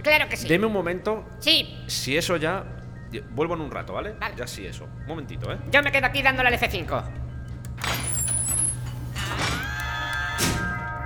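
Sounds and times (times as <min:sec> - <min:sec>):
speech: 0:00.0 - 0:07.2
steady low mechanical hum: 0:00.0 - 0:11.0
sliding door opening with hissing whooshes: 0:07.8 - 0:10.8.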